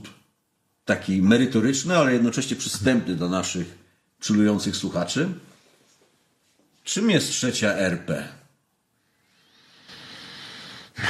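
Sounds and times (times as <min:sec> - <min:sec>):
speech: 0:00.9 - 0:05.5, 0:06.9 - 0:08.4
audible slow airy inhale close to the mic: 0:09.0 - 0:11.0.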